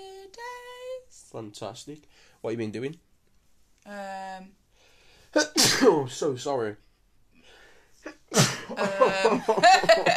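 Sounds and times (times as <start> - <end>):
speech: 1.3 - 3.1, 3.8 - 4.6, 5.3 - 6.9, 8.0 - 10.1
loud sneeze after a sharp inhale: 5.4 - 6.0, 8.1 - 9.0
laughter: 8.6 - 10.1.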